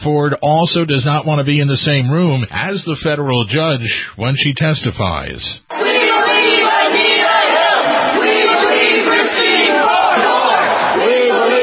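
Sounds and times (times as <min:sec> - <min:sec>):
speech: 0:00.0 - 0:05.9
crowd of demonstrators shouting and chanting at a protest: 0:05.7 - 0:11.6.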